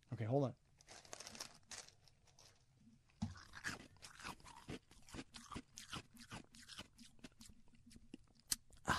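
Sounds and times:
speech: 0.1 - 1.0
person chewing ice: 3.3 - 8.8.

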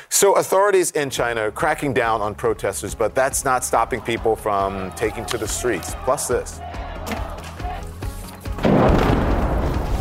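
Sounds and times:
speech: 0.2 - 7.3
faint thuds of incoming Russian artillery rounds: 8.6 - 9.8
heavy boom and sustained rumble of incoming Russian artillery: 8.6 - 9.9.

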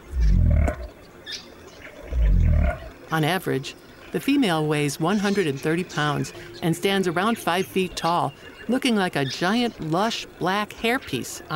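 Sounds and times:
southern cassowary deep rumbling pig-like grunts: 0.0 - 0.9, 2.1 - 2.9
speech: 3.1 - 11.5.

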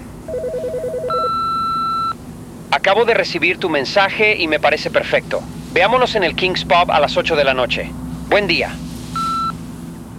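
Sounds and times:
low hum: 0.0 - 10.1
answering machine long steady high beep: 0.3 - 2.2, 9.2 - 9.6
hotel room telephone ringing with warbling electronic trill: 0.3 - 2.2
speech: 2.7 - 8.9.

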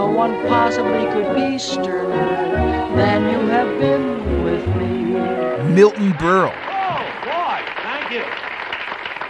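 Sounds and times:
speech: 0.2 - 6.7
person calling out over the applause: 5.6 - 6.6
crowd applause: 5.6 - 9.2.

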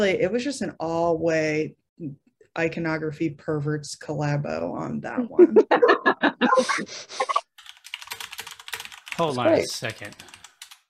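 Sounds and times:
speech: 0.0 - 7.5, 9.2 - 10.3
laughter: 5.4 - 7.4
typing on a computer keyboard: 7.6 - 10.8.

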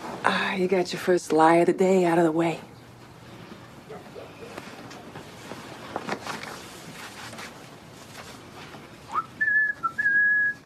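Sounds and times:
speech: 0.2 - 2.7
soft rustling: 3.1 - 9.2
person whistling a tune: 9.1 - 10.6.

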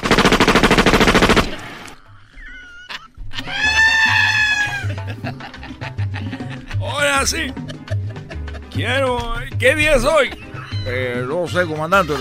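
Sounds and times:
comic machine-gun fire sound effect: 0.0 - 1.8
scattered noises: 0.0 - 1.9
laughter: 2.2 - 9.4, 10.1 - 12.1
speech: 7.2 - 7.7, 8.8 - 12.1.

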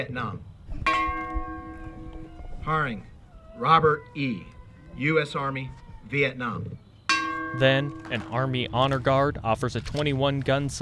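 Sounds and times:
speech: 0.0 - 1.0, 2.6 - 6.8, 7.5 - 10.8
memorial bell tolling at a military memorial service: 0.9 - 2.4, 7.1 - 9.1.

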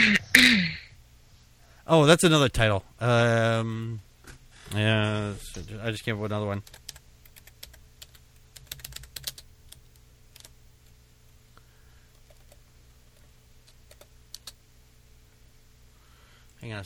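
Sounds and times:
low steady hum: 0.0 - 16.8
speech: 1.9 - 4.1, 4.7 - 6.8, 16.6 - 16.8
typing on a computer keyboard: 6.6 - 10.5, 12.2 - 14.6.

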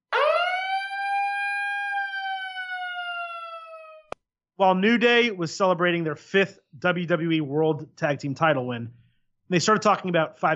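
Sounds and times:
siren sound effect wailing: 0.1 - 4.2
speech: 4.6 - 10.5.

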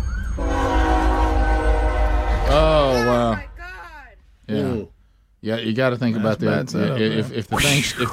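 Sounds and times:
deep rumble of a passing fast train in Odessa Texas: 0.0 - 3.3
fast train horn blaring in Odessa Texas: 0.3 - 3.1
speech: 5.4 - 8.1.

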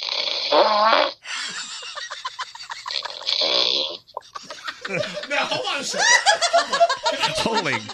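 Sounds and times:
man snoring played through a phone speaker: 0.0 - 1.2, 2.8 - 4.0
speech: 0.5 - 1.7
laughter: 1.2 - 3.4, 4.0 - 7.9.

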